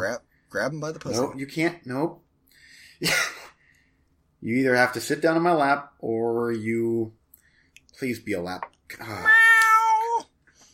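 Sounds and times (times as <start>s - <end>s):
speech: 0.0s - 2.2s, 3.0s - 3.4s, 4.4s - 7.2s, 8.0s - 9.4s
cat meowing: 9.1s - 10.3s.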